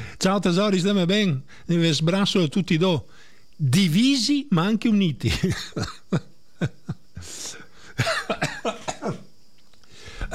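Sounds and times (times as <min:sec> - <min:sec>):
speech: 0:00.2 - 0:09.2
person coughing: 0:08.0 - 0:09.3.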